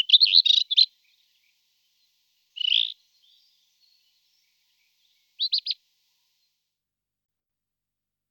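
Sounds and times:
rufous-tailed scrub robin Cercotrichas galactotes singing: 0:00.0 - 0:05.8.

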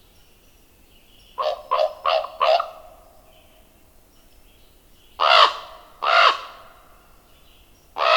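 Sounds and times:
common raven croaks and rasping caws: 0:01.4 - 0:03.0, 0:05.2 - 0:07.0, 0:08.0 - 0:08.1.

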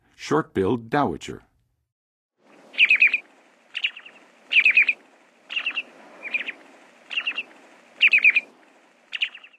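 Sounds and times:
Short-billed Dowitcher calling in the Western USA: 0:02.5 - 0:09.5.

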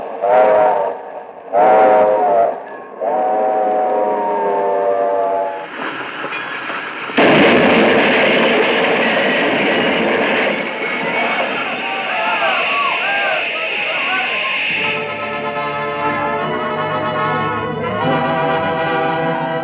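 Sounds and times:
rushing train noise: 0:00.0 - 0:19.6
train engine whistle shrieking: 0:00.2 - 0:05.6, 0:11.3 - 0:19.6.

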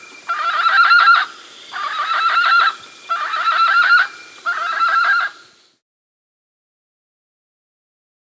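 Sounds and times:
Andean guan giving harsh rattling pulsed calls in South America: 0:00.0 - 0:05.6.

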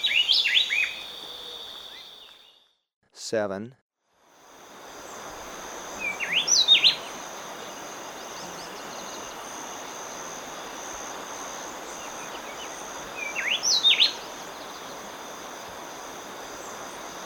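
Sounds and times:
speckle-breasted wren whistling song in Ecuador: 0:00.0 - 0:02.7, 0:06.0 - 0:07.1, 0:12.3 - 0:14.3
speech: 0:03.3 - 0:03.8.

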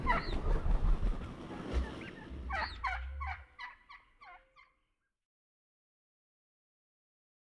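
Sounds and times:
wild turkey gobbling: 0:00.0 - 0:04.8.

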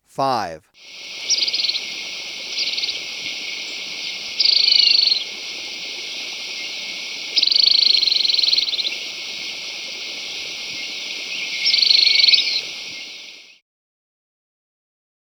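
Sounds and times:
speech: 0:00.2 - 0:01.4
tufted tit-tyrant giving high dry buzzy trills in Ecuador: 0:00.2 - 0:13.6.

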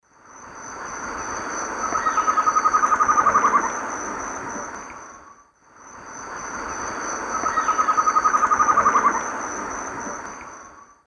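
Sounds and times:
female Thamnophilus amazonicus song in Eastern Lowlands of South America: 0:01.8 - 0:03.8, 0:07.3 - 0:09.2.

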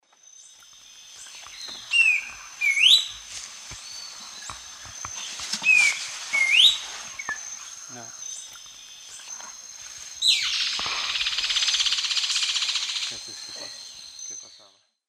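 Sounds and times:
Schiffornis major song in South American eastern lowlands: 0:00.0 - 0:15.0
Schiffornis major alarm call in South American eastern lowlands: 0:01.3 - 0:03.3, 0:03.9 - 0:09.4, 0:10.2 - 0:14.7.

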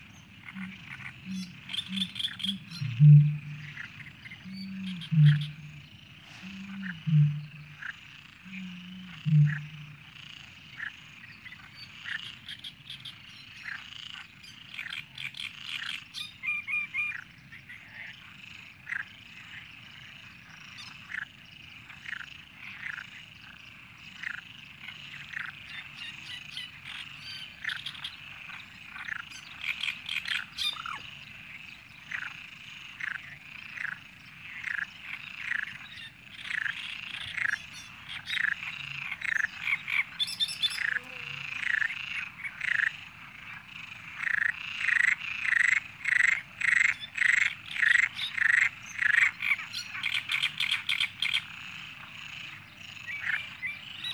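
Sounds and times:
frogs croaking: 0:00.0 - 0:54.1.

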